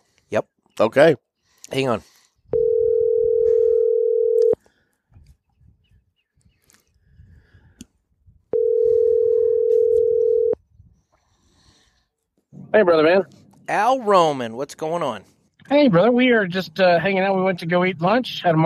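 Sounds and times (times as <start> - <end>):
speech: 0.3 - 2.2, 12.7 - 18.6
phone ringback tone while calling a friend: 2.5 - 4.6, 8.5 - 10.6.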